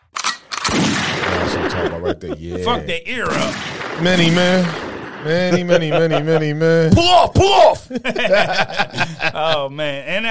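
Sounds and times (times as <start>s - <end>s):
gunshot cracks: 0.6s - 1.8s, 3.3s - 5.6s
heavy roaring gunshot echo: 0.7s - 2.0s, 3.3s - 5.8s
laughter: 1.2s - 4.7s, 5.3s - 10.3s
speech: 1.7s - 10.3s.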